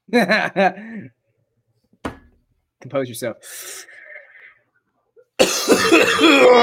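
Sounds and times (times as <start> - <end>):
speech: 0.1 - 1.2, 2.8 - 4.0, 5.4 - 6.6
harsh raspy coughing fit: 5.4 - 6.6.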